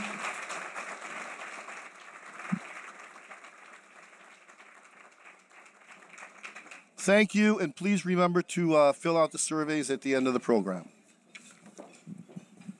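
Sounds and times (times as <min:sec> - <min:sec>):
audience applause: 0:00.0 - 0:07.4
speech: 0:07.1 - 0:11.0.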